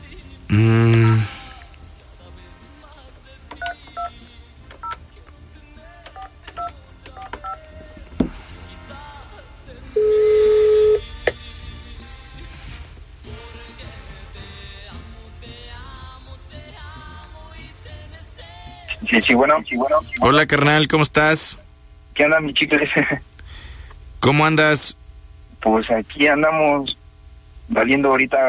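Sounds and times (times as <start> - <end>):
speech: 0.5 - 0.8, 19.2 - 21.6, 22.2 - 23.3, 24.2 - 25.0, 25.6 - 27.0, 27.7 - 28.4
telephone DTMF dialing tones: 10.0 - 11.0.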